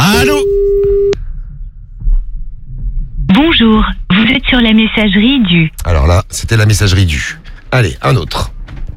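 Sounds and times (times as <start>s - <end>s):
telephone busy signal beep: 0.2s - 1.2s
speech: 3.6s - 8.5s.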